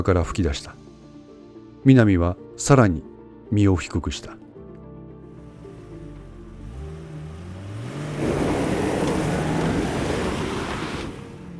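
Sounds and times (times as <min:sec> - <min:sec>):
speech: 0:00.0 - 0:00.8, 0:01.8 - 0:04.4
SUV 2-liter engine revving and roaring past bushes: 0:05.3 - 0:11.5.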